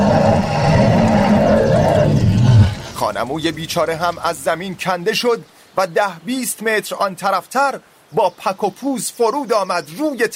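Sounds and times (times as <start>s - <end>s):
bear roaring: 0.0s - 4.2s
speech: 3.2s - 10.3s.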